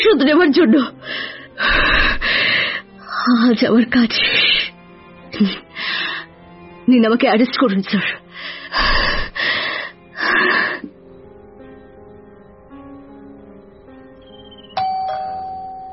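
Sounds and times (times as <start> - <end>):
speech: 0.0 - 2.0, 3.2 - 4.4, 5.4 - 5.6, 6.9 - 8.9
loud breathy gasp-like bursts: 1.0 - 2.9, 5.7 - 6.3, 8.3 - 10.9
doorbell single bright chime: 14.6 - 15.9.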